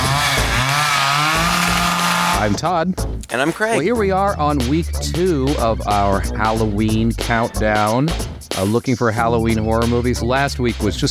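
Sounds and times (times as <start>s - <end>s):
chainsaw revving through throttle bursts: 0.0s - 2.6s
speech: 2.4s - 11.1s.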